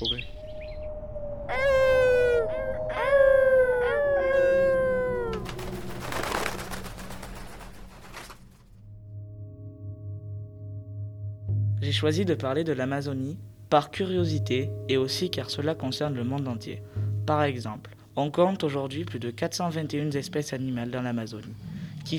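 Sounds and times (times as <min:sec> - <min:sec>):
several voices imitating wolf howls: 0:00.0 - 0:06.0
low hum: 0:00.0 - 0:18.0
speech: 0:11.9 - 0:22.1.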